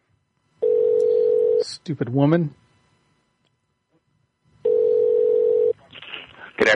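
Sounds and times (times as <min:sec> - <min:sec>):
telephone dial tone: 0:00.6 - 0:01.6, 0:04.7 - 0:05.7
speech: 0:01.6 - 0:02.6.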